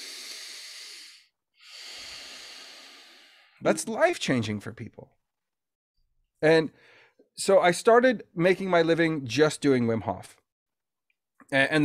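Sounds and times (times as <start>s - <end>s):
deep breaths demonstrated as a breathing technique: 0.0s - 3.7s, 6.7s - 7.3s
speech: 3.6s - 5.2s, 6.4s - 10.4s, 11.5s - 11.8s.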